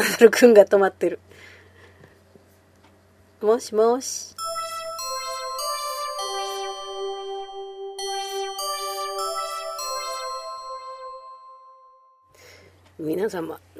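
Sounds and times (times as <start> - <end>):
speech: 0.0 - 1.5, 3.4 - 4.4, 13.0 - 13.7
FaceTime video call ringtone ringing without connecting: 4.4 - 12.4.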